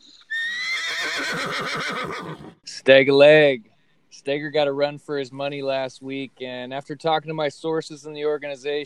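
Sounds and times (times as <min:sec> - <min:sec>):
stallion neighing: 0:00.2 - 0:02.6
speech: 0:01.4 - 0:08.8.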